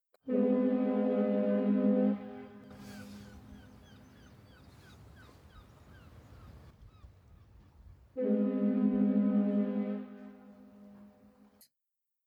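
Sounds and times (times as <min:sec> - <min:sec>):
boat horn blasts at sea: 0:00.2 - 0:06.7, 0:08.1 - 0:11.5
faint chirping calls: 0:02.7 - 0:08.0.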